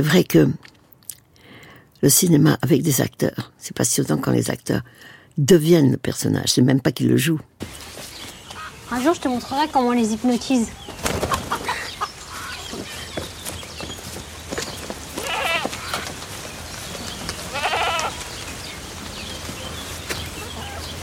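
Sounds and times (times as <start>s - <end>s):
speech: 0.0s - 0.7s, 2.0s - 8.1s, 8.9s - 10.9s
lamb bleating: 15.2s - 16.0s, 17.5s - 18.2s.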